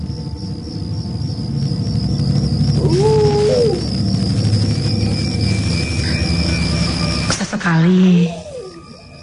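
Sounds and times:
loud engine-like rumble: 0:00.0 - 0:09.2
thin high whine: 0:00.0 - 0:09.2
animal howling: 0:02.4 - 0:07.2, 0:07.9 - 0:09.2.

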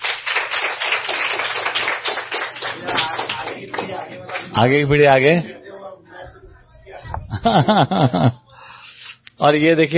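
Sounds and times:
audience clapping at a study camp: 0:00.0 - 0:04.8
speech: 0:04.6 - 0:05.6, 0:07.4 - 0:08.4, 0:09.4 - 0:09.9
laughter: 0:07.1 - 0:08.6.

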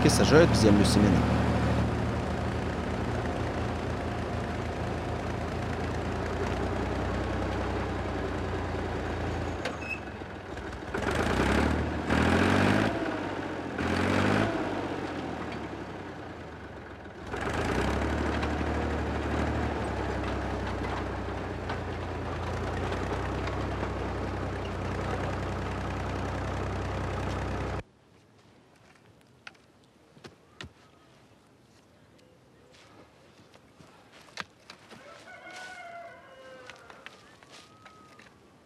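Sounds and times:
speech: 0:00.0 - 0:01.4
tractor engine droning while tilling garden soil: 0:00.0 - 0:27.8.

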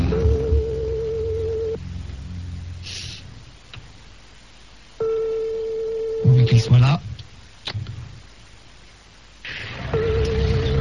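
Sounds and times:
telephone ringback tone while a call is being placed: 0:00.0 - 0:01.8, 0:05.0 - 0:06.8, 0:10.0 - 0:10.7
faint hum: 0:00.0 - 0:10.7.

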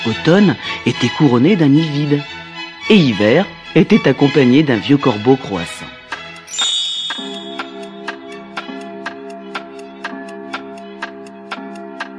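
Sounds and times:
speech: 0:00.0 - 0:05.8
clock ticking: 0:04.8 - 0:12.1
clock striking five o'clock with bright bell tones: 0:06.1 - 0:12.1
sustained chime: 0:06.5 - 0:08.0.

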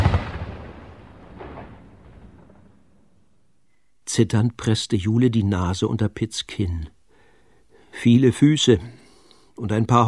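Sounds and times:
cannon shot fired from a pirate ship out over the open sea: 0:00.0 - 0:02.8
speech: 0:04.2 - 0:07.0, 0:08.0 - 0:09.0, 0:09.6 - 0:10.0.

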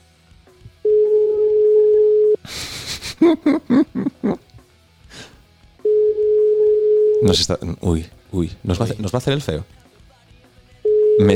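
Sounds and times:
ringback tone of an outgoing phone call over Bluetooth: 0:00.8 - 0:02.4, 0:05.8 - 0:07.4, 0:10.8 - 0:11.3
laughter: 0:02.5 - 0:04.5
speech: 0:03.2 - 0:03.9, 0:07.3 - 0:09.8, 0:11.2 - 0:11.3.

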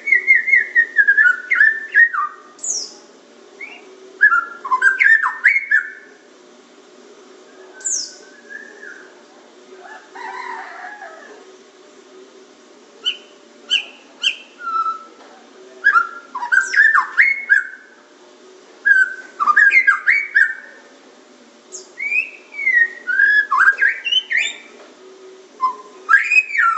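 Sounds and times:
faint low hum: 0:00.0 - 0:26.7
Oriental magpie-robin singing: 0:00.1 - 0:06.1, 0:07.7 - 0:09.1, 0:13.0 - 0:15.1, 0:15.8 - 0:17.9, 0:18.9 - 0:20.7, 0:21.7 - 0:24.7, 0:25.6 - 0:26.7.

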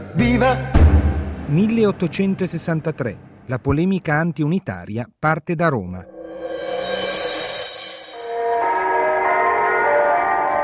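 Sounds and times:
speech: 0:00.2 - 0:00.8, 0:01.5 - 0:06.7
church bells ringing in Rome: 0:08.2 - 0:10.6.

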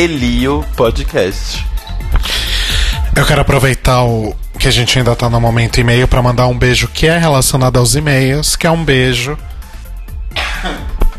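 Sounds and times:
speech: 0:00.0 - 0:02.3, 0:03.2 - 0:09.5
harsh cough: 0:10.3 - 0:11.0
throat-clearing rasp: 0:10.3 - 0:11.1.

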